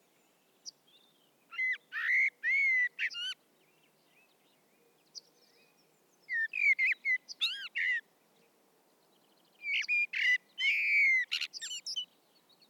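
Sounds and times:
Common blackbird Turdus merula singing: 0:00.9 - 0:03.4, 0:05.1 - 0:08.0, 0:09.6 - 0:12.6.

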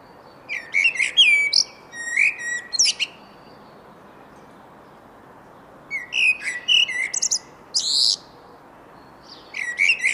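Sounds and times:
common blackbird singing: 0:00.3 - 0:03.8, 0:05.9 - 0:08.3, 0:09.0 - 0:10.1.

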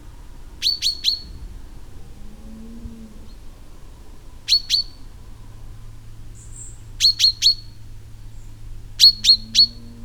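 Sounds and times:
common chaffinch Fringilla coelebs calls: 0:00.6 - 0:01.5, 0:04.5 - 0:05.2, 0:06.3 - 0:09.9.

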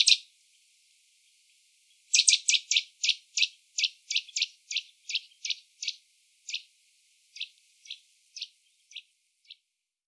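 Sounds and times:
Eurasian nuthatch Sitta europaea giving short sharp high notes: 0:00.0 - 0:00.3, 0:02.1 - 0:06.7, 0:07.3 - 0:09.6.

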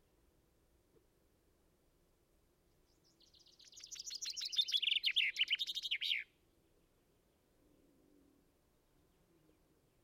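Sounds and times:
common chaffinch Fringilla coelebs song: 0:02.7 - 0:06.4.

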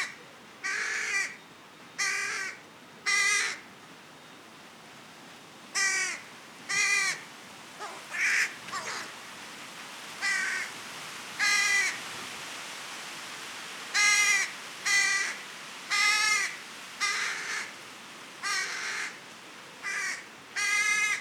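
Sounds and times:
carrion crow cawing: 0:00.0 - 0:01.4, 0:02.0 - 0:03.6, 0:05.8 - 0:07.2, 0:07.8 - 0:09.1, 0:10.2 - 0:10.7, 0:11.4 - 0:12.0, 0:14.0 - 0:17.7, 0:18.4 - 0:19.2, 0:19.8 - 0:21.1.

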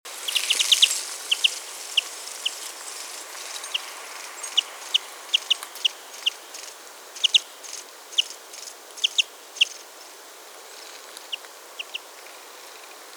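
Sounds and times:
European greenfinch Chloris chloris calling: 0:00.2 - 0:09.8.

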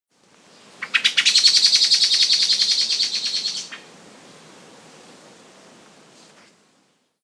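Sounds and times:
common blackbird Turdus merula chattering call: 0:00.8 - 0:03.9.

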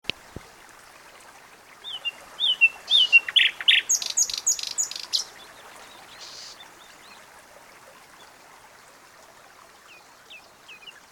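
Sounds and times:
Common nightingale Luscinia megarhynchos singing: 0:01.8 - 0:05.5, 0:06.1 - 0:06.6.

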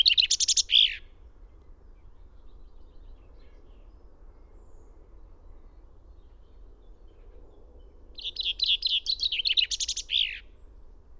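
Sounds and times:
Common chaffinch Fringilla coelebs song fragment: 0:00.0 - 0:01.1, 0:08.1 - 0:11.0.

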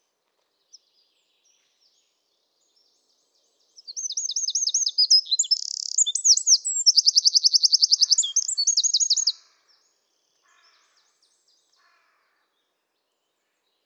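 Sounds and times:
Eurasian wren song: 0:03.8 - 0:09.4.

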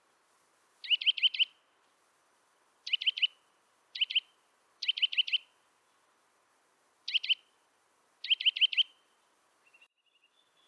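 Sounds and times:
Eurasian nuthatch Sitta europaea calls: 0:00.8 - 0:01.6, 0:02.9 - 0:03.4, 0:04.0 - 0:05.5, 0:07.1 - 0:07.4, 0:08.2 - 0:09.0.

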